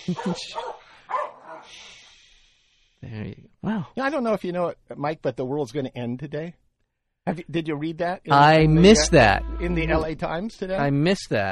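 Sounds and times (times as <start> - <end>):
speech: 0.0 - 0.7, 3.0 - 6.6, 7.2 - 11.5
dog barking on the campus of the University of California at Irvine: 0.1 - 1.7.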